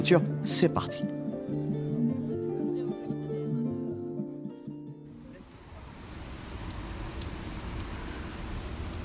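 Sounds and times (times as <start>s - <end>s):
speech: 0.0s - 1.1s
music: 0.0s - 5.5s
rain falling outside: 5.2s - 9.0s.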